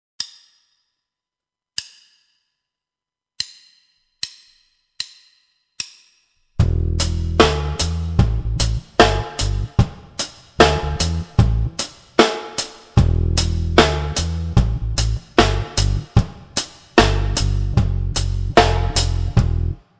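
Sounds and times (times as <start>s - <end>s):
reggae rockers drum beat: 6.6s - 19.7s.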